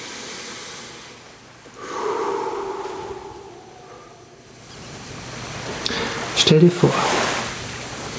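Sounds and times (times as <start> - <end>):
quiet hiss: 0.0 - 8.1
several people breathing in deeply together: 1.7 - 4.8
speech: 6.4 - 7.3.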